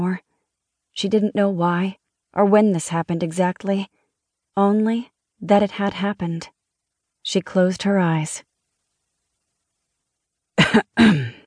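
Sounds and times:
speech: 1.0 - 4.0, 4.6 - 6.5, 7.3 - 8.5, 10.7 - 11.4
car driver clearing his throat: 10.6 - 11.4.

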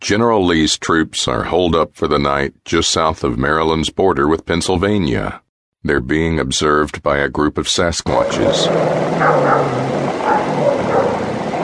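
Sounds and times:
speech: 0.1 - 10.4
military unit's dogs barking at night: 8.7 - 11.6.

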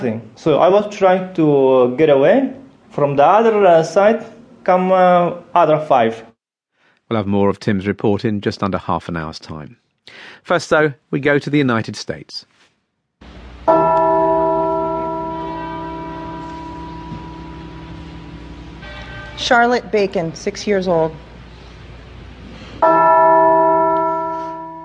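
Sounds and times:
speech: 0.0 - 6.3, 7.1 - 12.5, 13.2 - 14.0, 19.4 - 21.3, 22.8 - 23.2
church bell tolling: 13.6 - 20.5, 22.8 - 24.8.

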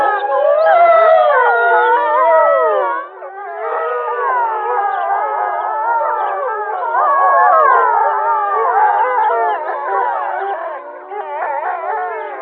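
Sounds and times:
chorus of wolves howling: 0.0 - 12.4.

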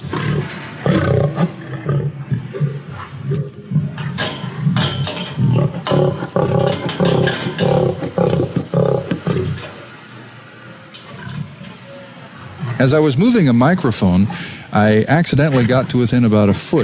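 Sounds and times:
captive African lions roaring at a zoo at feeding time: 0.0 - 9.8
speech: 12.8 - 16.8.

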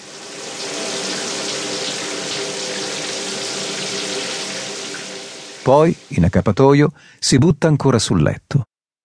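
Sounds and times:
ice-cold water spraying from a shower: 0.0 - 6.4
speech: 5.7 - 8.7.

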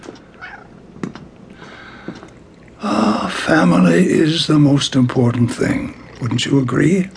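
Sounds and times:
faint clicks and taps: 0.0 - 2.8
cat meowing: 0.4 - 0.7
speech: 2.8 - 7.1.

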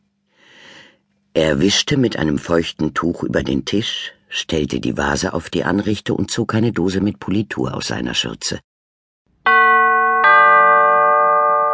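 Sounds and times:
speech: 1.4 - 8.7
doorbell two-note ding-dong chime: 9.4 - 11.7.

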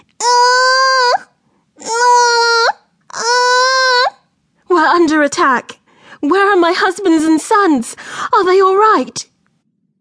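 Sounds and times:
baby wailing: 0.2 - 4.3
speech: 5.2 - 9.3.

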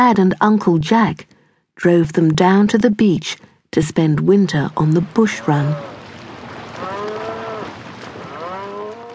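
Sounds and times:
speech: 0.0 - 5.9
cattle mooing: 5.1 - 6.0, 6.8 - 9.1.

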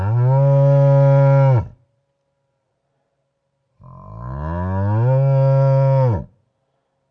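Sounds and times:
cow mooing: 0.0 - 1.7, 3.8 - 6.3.

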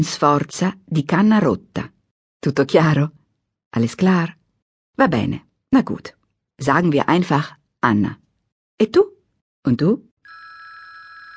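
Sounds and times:
speech: 0.0 - 4.4, 5.0 - 8.2, 8.8 - 10.1
mobile phone ringing with a bright electronic trill: 10.2 - 11.3.

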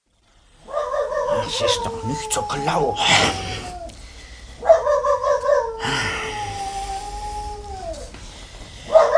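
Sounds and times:
dog howling and yelping at night: 0.6 - 8.2, 8.8 - 9.1
speech: 1.4 - 3.6.

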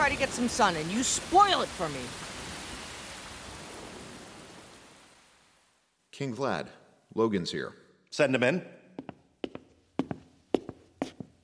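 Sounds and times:
rain falling: 0.0 - 6.0
speech: 0.1 - 2.3, 6.2 - 8.8.

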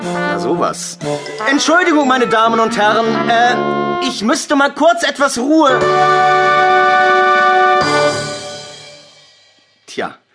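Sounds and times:
circus band horns holding brassy chords in rehearsal: 0.0 - 4.3, 5.7 - 9.3
speech: 0.0 - 8.2, 10.0 - 10.2.

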